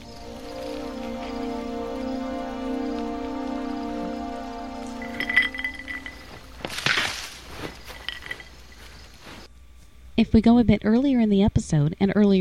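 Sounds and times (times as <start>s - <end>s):
steady low humming drone: 0.0s - 6.8s
ice cubes clinking and rattling in a glass: 5.0s - 6.8s
speech: 10.2s - 12.4s.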